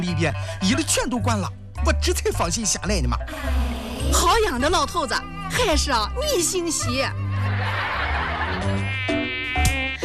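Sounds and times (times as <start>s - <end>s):
speech: 0.0s - 7.8s
laughter: 6.8s - 9.0s
mosquito buzzing: 8.6s - 10.0s.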